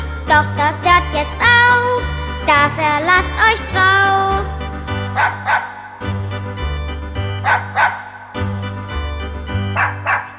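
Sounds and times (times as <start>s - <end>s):
speech: 0.3s - 4.6s, 5.2s - 6.2s
pet dachshund barking: 5.2s - 6.0s, 7.4s - 8.3s, 9.8s - 10.3s.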